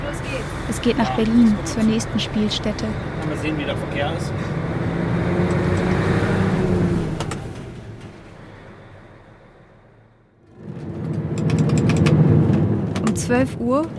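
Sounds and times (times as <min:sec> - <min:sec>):
24-ton fairground truck engine rumbling as it pulls away: 0:00.0 - 0:13.9
speech: 0:00.7 - 0:04.6, 0:13.3 - 0:13.9.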